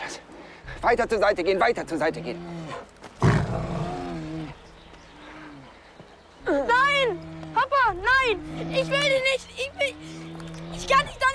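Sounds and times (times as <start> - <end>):
speech: 0.8 - 2.9
bear roaring: 2.0 - 4.6, 6.4 - 11.3.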